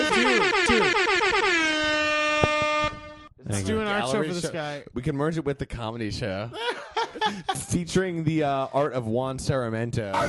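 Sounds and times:
laughter: 0.0s - 0.9s, 6.5s - 7.7s
loud brassy air horn blaring: 0.0s - 3.4s
speech: 3.9s - 10.2s.

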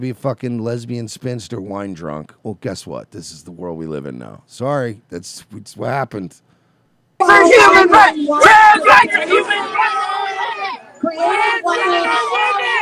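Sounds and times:
speech: 0.0s - 6.5s, 7.2s - 12.8s
crowd of men screaming and chanting in unison: 7.2s - 12.8s.

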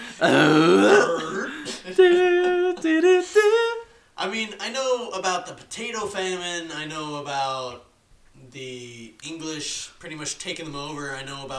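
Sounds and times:
sustained tonal voiced grunts: 0.0s - 1.7s
speech: 0.2s - 1.2s, 1.9s - 3.6s, 4.2s - 11.5s
loud drawn-out croaking burp: 0.2s - 1.4s.

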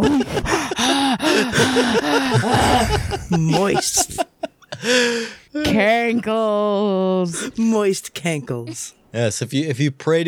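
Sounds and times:
laughter: 0.0s - 5.3s
heavy breathing into a microphone: 0.3s - 3.4s
speech: 1.8s - 5.3s, 6.1s - 10.2s.

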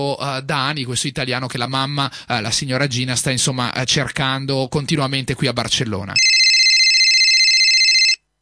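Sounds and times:
speech: 0.0s - 6.3s
steady electronic phone ring: 6.2s - 8.2s.

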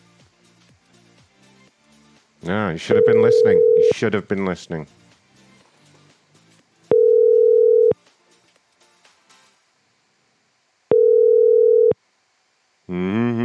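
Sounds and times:
speech: 2.4s - 5.0s
telephone ringing while waiting for someone to pick up: 2.9s - 4.0s, 6.9s - 8.0s, 10.9s - 12.0s.

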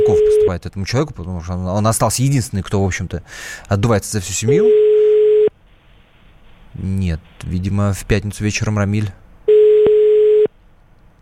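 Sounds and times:
electronic ringback tone of a phone line ringing: 0.0s - 0.5s, 4.5s - 5.5s, 9.5s - 10.5s
speech: 0.5s - 4.9s, 6.8s - 9.2s.

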